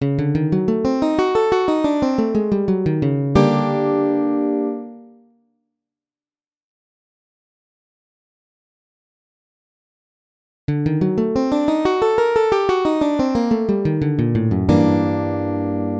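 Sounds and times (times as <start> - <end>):
seventh lick into D minor key: 0.0 - 5.0, 10.7 - 15.9.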